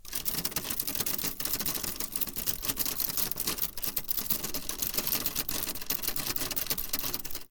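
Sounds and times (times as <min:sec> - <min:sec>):
typewriter typing: 0:00.0 - 0:07.4.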